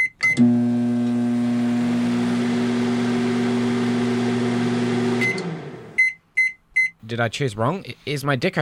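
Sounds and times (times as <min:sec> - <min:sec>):
microwave oven beeps: 0:00.0 - 0:00.8, 0:05.1 - 0:07.0
microwave oven plugged into a power board humming: 0:00.3 - 0:06.0
speech: 0:00.4 - 0:00.7, 0:07.1 - 0:08.6.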